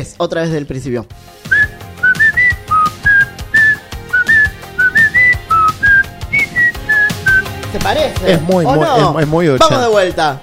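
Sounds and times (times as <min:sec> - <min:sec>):
speech: 0:00.0 - 0:01.6, 0:07.7 - 0:10.4
person whistling a tune: 0:01.5 - 0:07.5.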